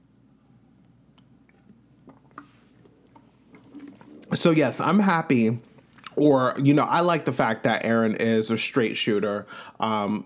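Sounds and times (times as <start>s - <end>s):
sipping water: 1.1s - 6.3s
gulp of water: 1.5s - 4.4s
speech: 4.4s - 10.2s.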